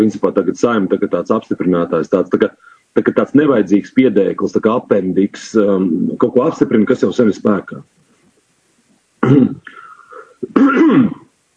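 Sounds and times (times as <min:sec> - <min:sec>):
speech: 0:00.0 - 0:08.0, 0:09.2 - 0:09.8, 0:10.5 - 0:11.2
person coughing loudly and roughly: 0:09.2 - 0:11.3.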